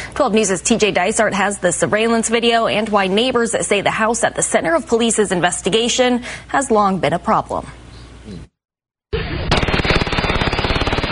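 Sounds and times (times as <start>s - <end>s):
speech: 0.2s - 8.5s
rapid gunfire at night: 9.4s - 11.1s.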